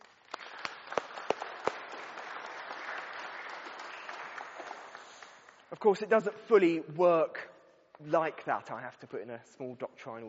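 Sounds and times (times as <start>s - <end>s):
audience applauding a speaker: 0.0s - 5.7s
speech: 5.7s - 10.2s.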